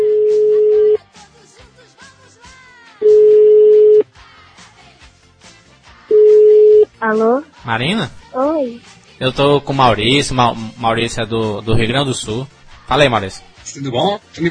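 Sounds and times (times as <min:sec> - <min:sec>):
telephone ringback tone as a call is placed: 0:00.0 - 0:01.0, 0:03.0 - 0:04.0, 0:06.1 - 0:06.9
speech: 0:07.1 - 0:14.4.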